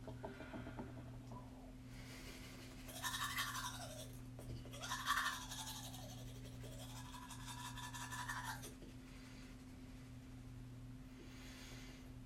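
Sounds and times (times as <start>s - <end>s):
steady motor-like hum: 0.0s - 12.2s
toothbrush scrubbing teeth: 2.8s - 8.8s.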